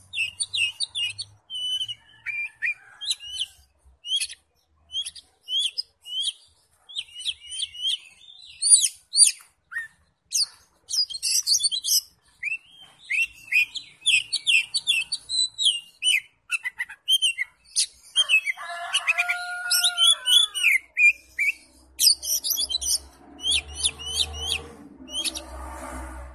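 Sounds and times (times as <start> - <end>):
Oriental magpie-robin singing: 0.0 - 25.5.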